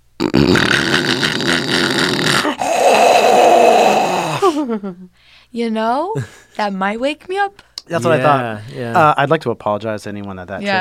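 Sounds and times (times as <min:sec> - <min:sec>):
person vocally imitating loud snoring: 0:00.2 - 0:04.7
speech: 0:05.5 - 0:10.8.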